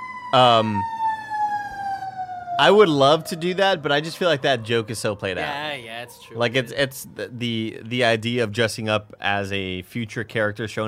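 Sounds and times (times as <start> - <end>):
emergency vehicle siren passing outside: 0.0 - 7.9
speech: 0.3 - 1.0, 2.6 - 10.8.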